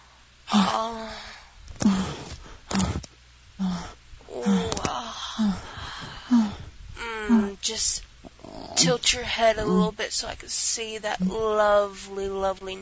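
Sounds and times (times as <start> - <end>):
human heavy breathing and low rasping growls into a microphone: 0.5 - 7.6, 8.2 - 10.0
speech: 8.8 - 12.8.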